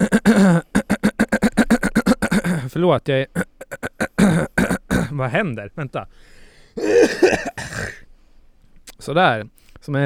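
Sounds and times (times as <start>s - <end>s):
person coughing: 0.0s - 2.7s, 3.4s - 5.2s, 6.8s - 8.0s
speech: 2.8s - 4.5s, 5.1s - 8.0s, 9.0s - 10.0s.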